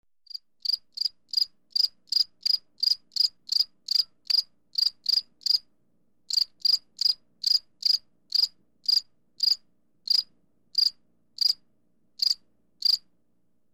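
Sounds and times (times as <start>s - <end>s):
cicada chirping: 0.3s - 5.6s, 6.3s - 10.2s, 12.2s - 13.0s.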